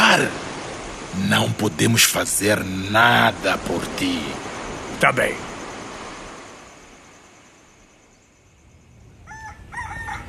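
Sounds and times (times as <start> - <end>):
steady hissing noise: 0.0 - 10.2
speech: 0.1 - 0.5, 1.1 - 4.4, 5.0 - 5.5
rooster crowing at dawn: 9.2 - 10.2.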